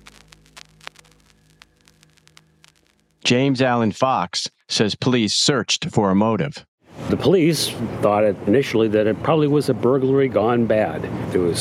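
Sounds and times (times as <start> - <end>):
irregular sharp pops and clicks from record player: 0.0 - 3.2
low electrical hum: 0.0 - 3.2
record player static from speakers: 0.0 - 3.4
speech: 3.3 - 11.5.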